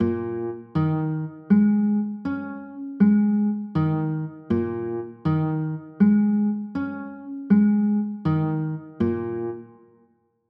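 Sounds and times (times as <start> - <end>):
B flat minor chords: 0.0 - 9.8.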